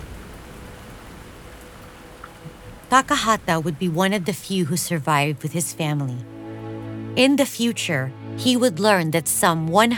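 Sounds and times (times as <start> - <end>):
heavy rain pouring during a storm: 0.0 - 6.2
speech: 2.9 - 6.4, 7.2 - 9.9.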